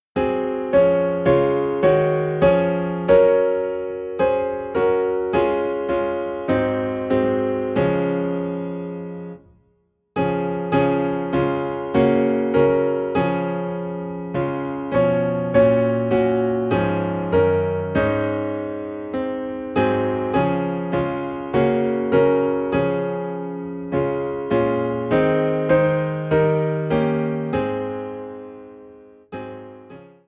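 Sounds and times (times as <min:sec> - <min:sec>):
piano piece in D flat: 0:00.0 - 0:30.2.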